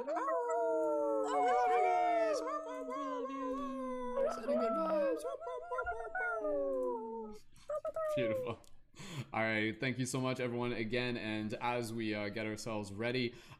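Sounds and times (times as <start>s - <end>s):
speech: 0.0s - 0.3s, 4.4s - 13.5s
group of people imitating wolf howls through microphones: 0.0s - 7.4s.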